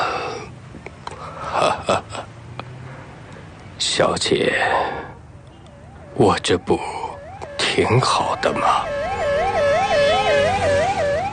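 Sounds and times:
speech: 1.6 - 2.2, 3.9 - 5.0, 6.2 - 7.0, 7.8 - 9.0
police car siren wailing as the car speeds past outside a hospital: 5.6 - 11.3.

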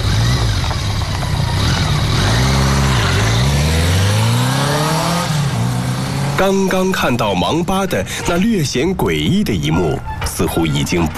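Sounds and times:
motorcycle engine revving and pulling away: 0.0 - 6.6
speech: 6.4 - 11.1.

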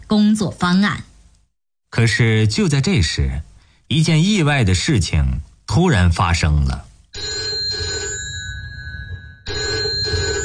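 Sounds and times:
speech: 0.1 - 1.1, 1.9 - 7.4
telephone bell ringing: 7.2 - 10.4.

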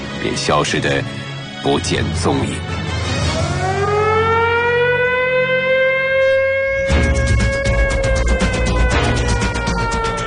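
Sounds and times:
speech: 0.2 - 2.8
alarm siren wailing: 2.9 - 10.2.

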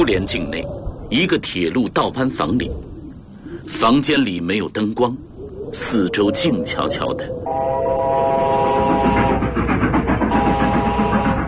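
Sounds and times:
speech: 0.0 - 2.9, 3.7 - 7.4
train loaded with military supplies rushing past a trackside railway shift hut: 5.8 - 11.4
sustained whistle of a train loaded with military supplies: 7.5 - 9.5, 10.3 - 11.4.

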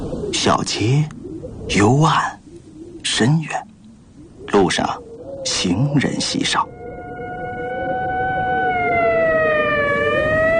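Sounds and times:
speech: 0.4 - 2.4, 3.0 - 3.7, 4.5 - 6.7
ambulance siren wailing: 6.2 - 10.5.

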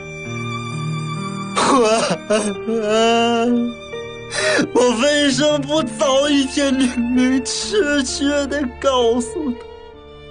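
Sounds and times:
sustained tonal background: 0.0 - 10.2
man slumped over an office desk groaning and sobbing: 1.6 - 9.6
speech: 1.8 - 9.7.

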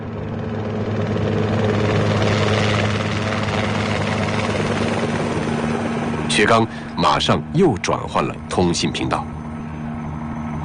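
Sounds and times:
aircraft engine noise as a plane speeds toward a target area: 0.0 - 10.6
speech: 6.4 - 9.4.

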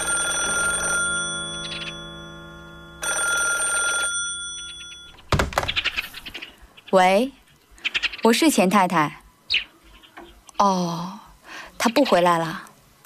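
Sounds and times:
telephone ringing in a family home: 0.0 - 5.4
speech: 6.9 - 7.4, 8.2 - 9.2, 10.6 - 11.2, 11.8 - 12.7.

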